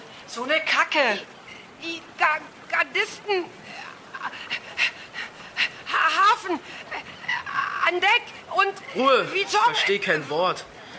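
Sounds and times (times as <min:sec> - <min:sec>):
speech: 0:00.4 - 0:03.6, 0:04.2 - 0:04.7, 0:06.0 - 0:06.8, 0:07.9 - 0:10.7
heavy raspy panting out of breath: 0:04.2 - 0:06.0.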